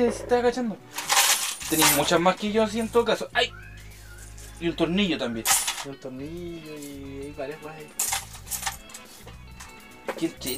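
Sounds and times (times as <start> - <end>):
speech: 0.0 - 1.1, 1.7 - 3.6, 4.6 - 8.1, 10.2 - 10.5
old coins dropping and clinking: 0.9 - 3.0, 3.9 - 4.6, 5.3 - 10.5.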